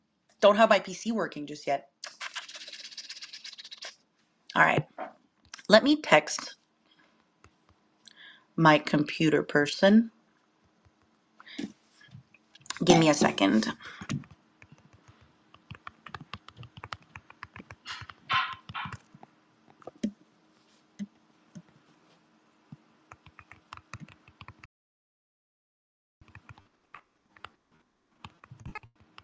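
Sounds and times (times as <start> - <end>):
speech: 0.4 - 2.2, 4.6 - 5.0, 5.7 - 6.6, 8.6 - 10.2, 12.8 - 14.0
rapid uneven keyboard typing: 13.9 - 20.2, 23.1 - 24.7, 26.2 - 27.6, 28.2 - 29.2.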